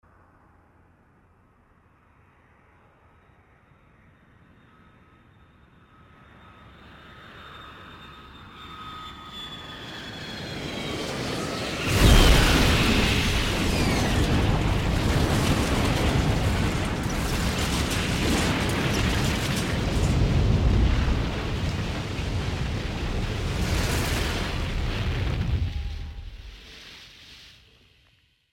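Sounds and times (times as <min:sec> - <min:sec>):
airplane crashing: 0:10.4 - 0:26.7.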